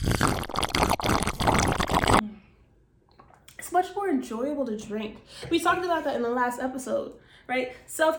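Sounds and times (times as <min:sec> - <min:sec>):
speech: 0:00.0 - 0:01.0, 0:04.2 - 0:08.1
water pouring into a wine glass: 0:00.0 - 0:02.2.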